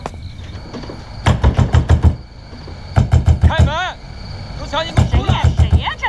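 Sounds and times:
loud pounding on a door: 0:01.2 - 0:02.2, 0:03.0 - 0:03.8, 0:04.9 - 0:05.9.

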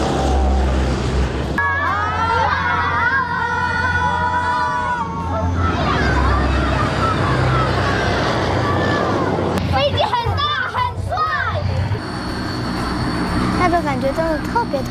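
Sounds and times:
military fighter jet roaring past as it lands: 0:00.0 - 0:14.9
crowd of schoolchildren chattering: 0:01.6 - 0:11.9.

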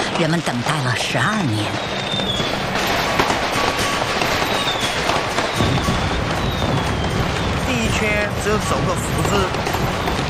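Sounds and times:
firecrackers and fireworks crackling and popping: 0:00.0 - 0:10.2
speech: 0:00.2 - 0:02.4, 0:08.0 - 0:10.1
sharp firework bangs: 0:01.7 - 0:10.2
faint firework whistles: 0:01.8 - 0:03.0, 0:03.6 - 0:08.3.

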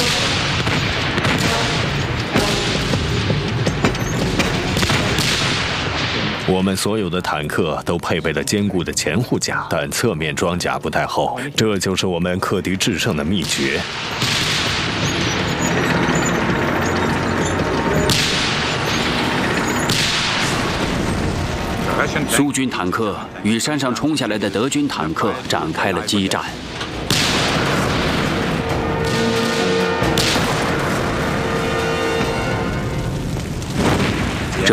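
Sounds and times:
artillery fire from about 200 guns shooting at tanks in a battle: 0:00.0 - 0:06.9, 0:13.4 - 0:22.6, 0:24.2 - 0:34.7
speech: 0:06.5 - 0:14.4, 0:22.4 - 0:26.9.

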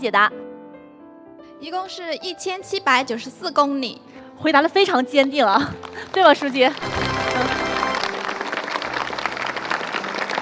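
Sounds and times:
speech: 0:00.0 - 0:00.4, 0:01.6 - 0:07.6
crowd applauding students after a quiz: 0:05.8 - 0:10.3.

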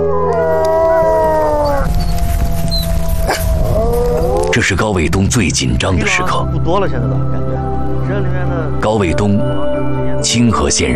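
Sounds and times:
bitter cold wind on a snowy plain: 0:00.0 - 0:04.8
pack of wolves howling in mating season on a snowy plain: 0:00.0 - 0:04.8
steady low rumble: 0:01.0 - 0:08.8
speech: 0:04.6 - 0:10.9.

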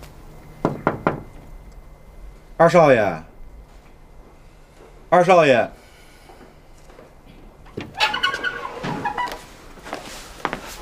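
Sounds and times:
knocking on a door: 0:00.6 - 0:01.3
speech: 0:02.6 - 0:03.3, 0:05.1 - 0:05.8.

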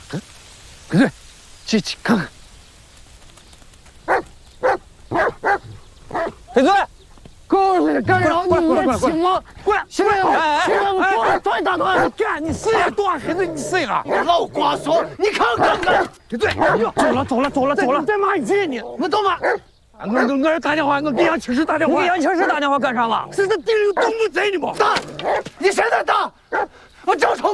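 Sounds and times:
speech: 0:00.1 - 0:02.4, 0:06.6 - 0:06.9, 0:07.5 - 0:27.5
dog barking and yelping: 0:04.1 - 0:06.6, 0:10.2 - 0:17.2, 0:18.8 - 0:20.4, 0:21.1 - 0:22.7, 0:23.9 - 0:24.2, 0:25.0 - 0:25.6, 0:26.5 - 0:26.8.

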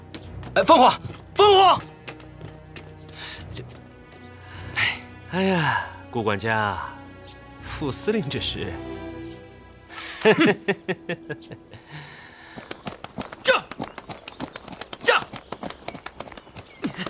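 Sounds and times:
hooves of a ridden horse clip-clopping: 0:00.0 - 0:04.4, 0:12.6 - 0:17.0
speech: 0:00.6 - 0:01.9, 0:05.3 - 0:07.0, 0:07.8 - 0:08.9, 0:10.2 - 0:11.7
laughter: 0:10.0 - 0:12.0.

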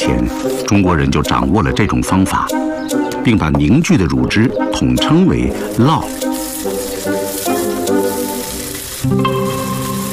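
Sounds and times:
speech: 0:00.0 - 0:06.2
soft music: 0:00.0 - 0:10.1
slices of goat-milk cheese sizzling in hot oil: 0:05.6 - 0:10.1.

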